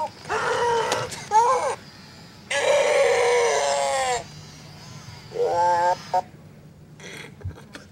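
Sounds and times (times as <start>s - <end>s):
robot dinosaur toy crying and screaming while held by its tail and hit: 0.0s - 6.3s.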